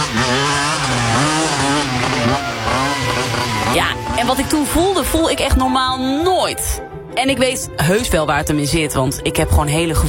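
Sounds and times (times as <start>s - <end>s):
motorcycle engine revving hard racing past on a street: 0.0s - 6.5s
speech: 3.8s - 10.0s.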